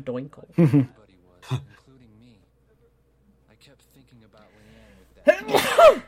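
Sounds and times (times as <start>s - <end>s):
speech: 0.0s - 1.8s, 5.3s - 6.0s
loud sneeze: 5.3s - 6.0s.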